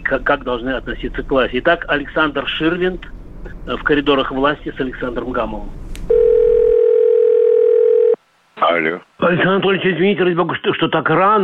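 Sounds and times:
speech: 0.1s - 5.8s, 8.6s - 11.4s
telephone ringing tone during a phone call: 6.1s - 8.2s.

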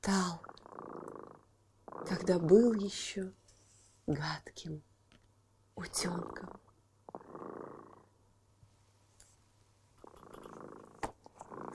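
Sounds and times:
speech: 0.0s - 0.5s, 2.0s - 3.4s, 4.1s - 4.9s, 5.8s - 6.6s
cat purring: 0.0s - 3.1s, 6.0s - 8.2s, 10.0s - 11.7s
faint steady hum: 0.0s - 11.7s.

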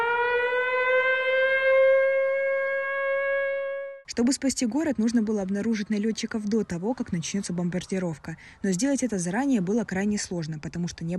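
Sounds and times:
air raid warning siren wailing: 0.0s - 4.1s
speech: 4.2s - 11.1s.

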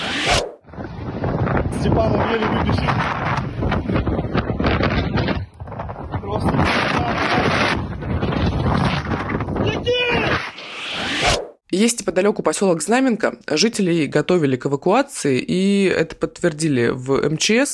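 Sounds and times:
roaring wind gusts battering microphone during forest and grass fire: 0.0s - 11.4s
speech: 11.8s - 17.7s.

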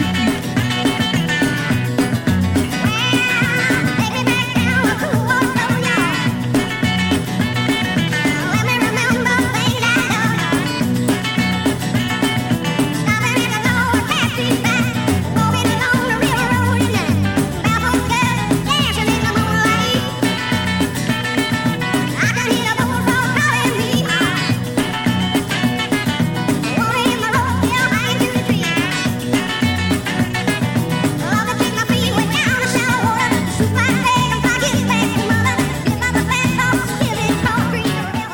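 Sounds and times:
1969 swamp rock song with full band: 0.0s - 38.3s.

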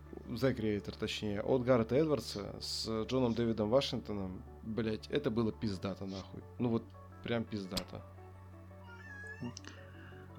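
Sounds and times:
speech: 0.3s - 8.2s, 9.4s - 9.8s
cat meowing: 8.8s - 10.1s.

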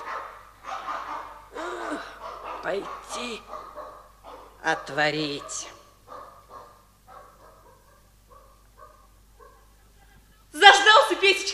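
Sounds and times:
dog barking: 0.0s - 9.8s
speech: 2.6s - 3.6s, 4.6s - 5.8s.

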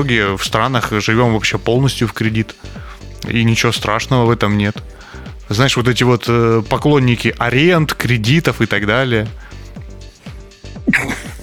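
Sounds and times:
speech: 0.0s - 9.4s
person sneezing: 10.8s - 11.4s.

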